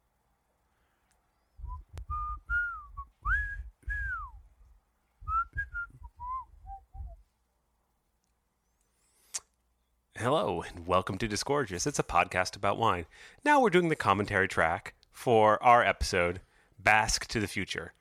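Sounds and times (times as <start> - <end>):
person whistling a short wandering melody: 1.6 - 4.4, 5.2 - 7.2
speech: 10.2 - 17.9.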